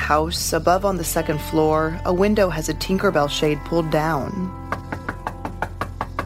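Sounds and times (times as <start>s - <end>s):
speech: 0.1s - 4.7s
knocking on the front door of a two-story house: 4.7s - 6.2s.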